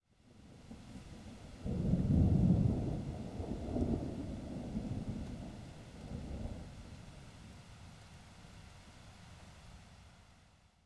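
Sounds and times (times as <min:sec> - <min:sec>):
rain: 0:00.2 - 0:10.8
thunder: 0:00.7 - 0:06.9.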